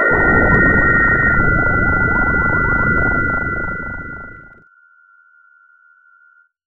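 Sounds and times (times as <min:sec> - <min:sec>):
teleportation effect: 0:00.1 - 0:04.6.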